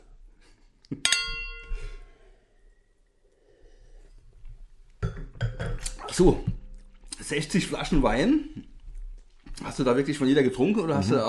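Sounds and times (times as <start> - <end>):
glasses clinking in a toast: 1.0 - 2.0
speech: 6.2 - 6.6, 7.3 - 8.7, 9.6 - 11.2.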